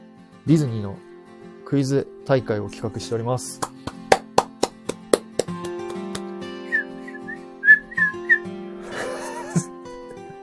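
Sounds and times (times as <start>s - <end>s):
speech: 0.4s - 1.1s, 1.7s - 3.7s
person whistling short wobbly notes: 6.7s - 8.5s
laughter: 8.8s - 9.7s.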